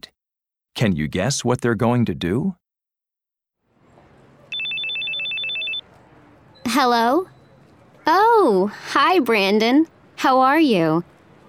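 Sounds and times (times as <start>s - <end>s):
speech: 0.8s - 2.6s, 6.8s - 7.3s, 8.0s - 11.1s
telephone ringing with a rapid trilling electronic bell: 4.5s - 6.0s.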